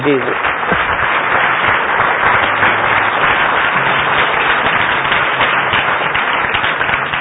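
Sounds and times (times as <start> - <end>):
standing audience in an auditorium applauding: 0.0 - 7.2
speech: 0.1 - 0.6.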